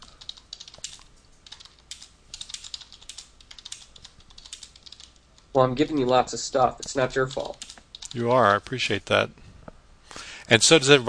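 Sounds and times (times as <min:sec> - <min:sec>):
typing on a computer keyboard: 0:00.0 - 0:06.1, 0:07.2 - 0:08.2
speech: 0:05.6 - 0:09.4, 0:10.5 - 0:11.0.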